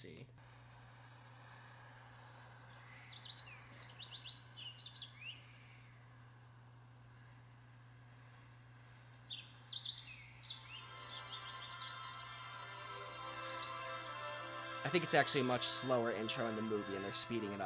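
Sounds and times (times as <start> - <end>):
steady low hum: 0.3 - 17.2
bird chirps and tweets: 2.7 - 6.0, 8.7 - 14.8
sustained flute-like tones: 10.8 - 17.6
speech: 14.8 - 17.6.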